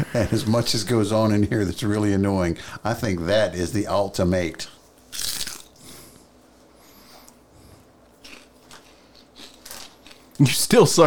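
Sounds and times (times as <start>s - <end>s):
speech: 0.2s - 5.3s, 10.4s - 11.0s
crunching while chewing food: 4.9s - 6.1s, 7.0s - 10.5s.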